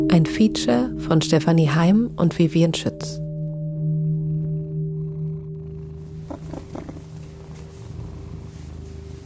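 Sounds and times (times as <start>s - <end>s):
speech: 0.1s - 3.2s
cat purring: 3.7s - 9.2s
soft rustling: 6.0s - 9.2s.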